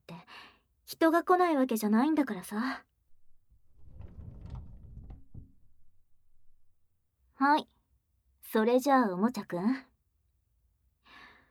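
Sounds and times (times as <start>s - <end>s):
speech: 0.9s - 2.9s, 7.4s - 7.8s, 8.5s - 9.9s
sliding door thudding shut with a rumbling scrape: 3.3s - 6.9s.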